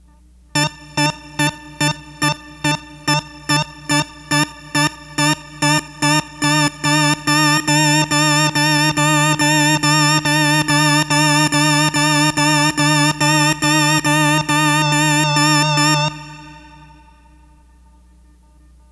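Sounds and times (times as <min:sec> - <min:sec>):
synthesizer: 0:00.0 - 0:18.9.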